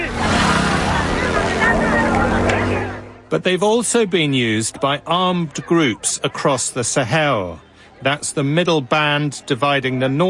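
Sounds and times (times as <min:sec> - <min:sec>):
motorbike engine droning: 0:00.0 - 0:03.3
speech: 0:03.3 - 0:10.2.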